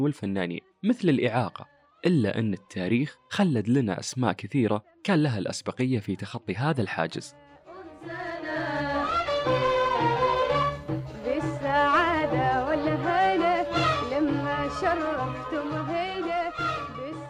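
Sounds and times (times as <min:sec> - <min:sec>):
speech: 0:00.0 - 0:07.4, 0:08.0 - 0:08.4
woman singing an ornamented melody: 0:07.3 - 0:10.4, 0:11.2 - 0:17.2
instrumental accompaniment: 0:07.8 - 0:17.2.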